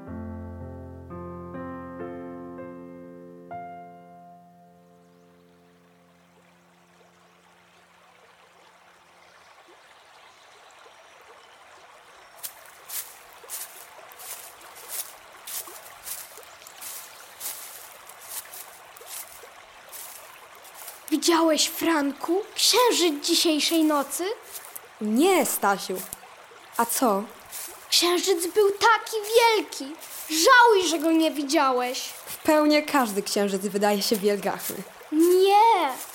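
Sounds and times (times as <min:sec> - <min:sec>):
river water rushing: 0:12.4 - 0:36.1
speech: 0:21.2 - 0:26.2, 0:26.8 - 0:27.4, 0:28.0 - 0:36.1.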